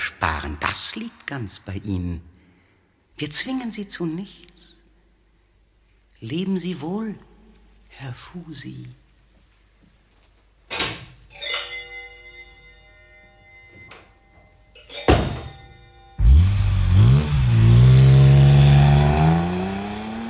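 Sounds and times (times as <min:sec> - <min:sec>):
speech: 0:00.2 - 0:02.3, 0:03.2 - 0:04.8, 0:06.2 - 0:07.3, 0:07.9 - 0:09.0
car engine revving as the car speeds away: 0:16.2 - 0:20.2.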